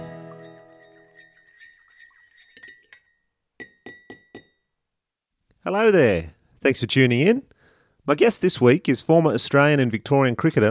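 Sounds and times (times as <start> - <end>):
glassware clinking in a busy cafe: 0.0 - 4.7
speech: 5.6 - 10.6.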